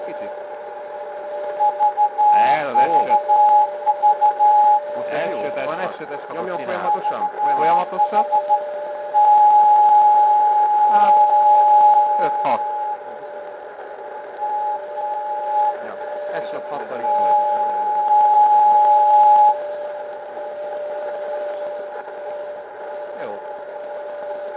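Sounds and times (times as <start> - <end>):
CW morse code transmission: 1.5 - 13.1, 14.4 - 19.6.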